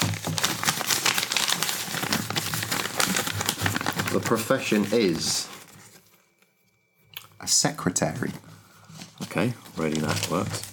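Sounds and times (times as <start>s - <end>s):
paper envelope crinkling and tearing as it is opened: 0.0s - 5.2s
speech: 4.1s - 5.6s, 7.5s - 8.5s, 9.4s - 10.7s.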